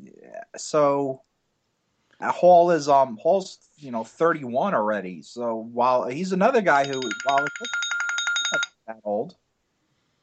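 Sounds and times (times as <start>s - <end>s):
speech: 0.6s - 1.3s, 2.2s - 7.8s, 8.5s - 9.4s
phone alarm ringing with bright electronic beeps: 6.7s - 8.8s.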